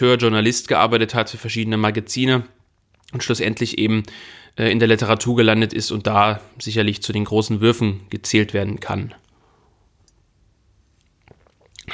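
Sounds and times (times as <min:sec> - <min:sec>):
speech: 0:00.0 - 0:09.2
sipping black tea: 0:11.2 - 0:11.9.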